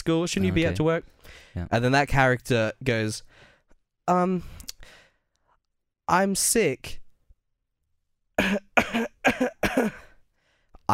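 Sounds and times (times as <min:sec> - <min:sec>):
speech: 0:00.1 - 0:03.5, 0:04.1 - 0:05.0, 0:06.1 - 0:07.0, 0:08.4 - 0:10.0
person fake coughing: 0:08.4 - 0:10.2.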